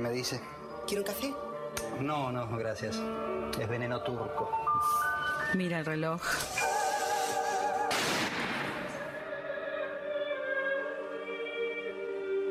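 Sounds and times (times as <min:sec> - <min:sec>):
speech: 0:00.0 - 0:06.6
sustained music: 0:00.0 - 0:12.5
single loud gunshot inside a house: 0:07.9 - 0:09.1.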